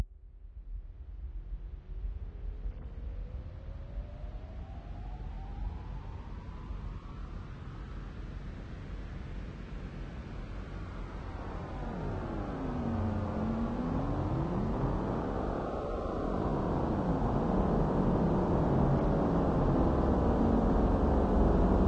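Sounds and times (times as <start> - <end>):
electronica noise music: 11.3 - 21.8.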